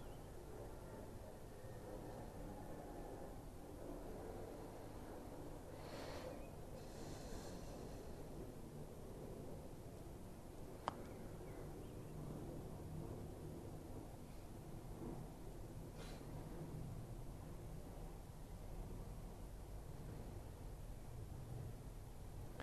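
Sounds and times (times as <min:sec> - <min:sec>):
airplanes passing overhead near airport: 0:00.0 - 0:22.5
faint click: 0:10.8 - 0:11.2.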